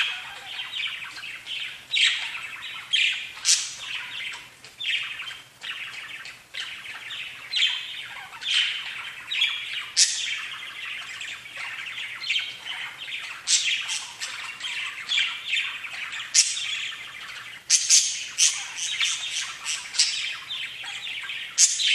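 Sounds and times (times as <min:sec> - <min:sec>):
budgerigar chatter with scratchy warbles and high sharp squeaks: 0:00.0 - 0:21.9.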